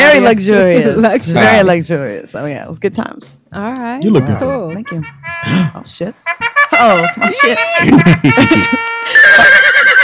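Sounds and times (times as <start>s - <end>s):
speech: 0.2s - 10.0s
laughter: 4.0s - 5.7s, 7.2s - 10.0s
horse neighing: 9.1s - 10.0s.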